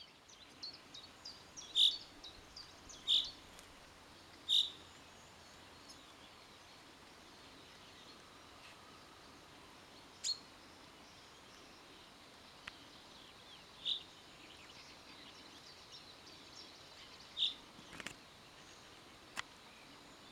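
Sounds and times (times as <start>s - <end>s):
faint background chirping: 0.0s - 20.2s
Common chaffinch Fringilla coelebs call notes: 1.7s - 2.0s, 4.5s - 4.8s.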